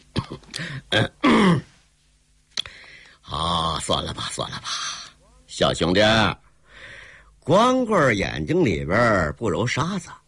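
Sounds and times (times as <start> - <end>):
dry rasping cough from a seated man: 0.1 - 1.8
speech: 0.6 - 1.7, 3.9 - 5.0, 5.6 - 6.4, 7.4 - 10.2.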